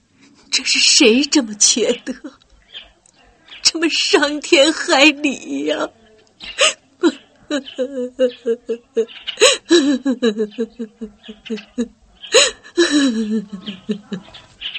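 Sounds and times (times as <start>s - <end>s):
woman crying and sobbing: 0.2s - 2.4s, 3.7s - 14.4s
speech: 0.6s - 2.4s, 3.7s - 14.5s
laughter: 6.6s - 14.6s.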